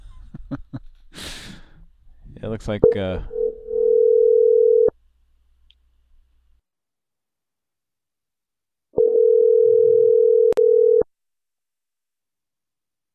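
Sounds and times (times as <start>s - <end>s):
speech: 2.4s - 3.4s
telephone dial tone: 3.4s - 4.9s, 9.0s - 11.1s.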